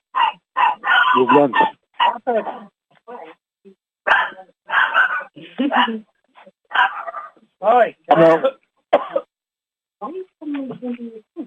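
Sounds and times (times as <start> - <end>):
dog barking: 0.1 - 2.5, 4.1 - 6.0, 6.7 - 7.4
speech: 1.2 - 2.8, 5.8 - 6.1, 7.6 - 8.5.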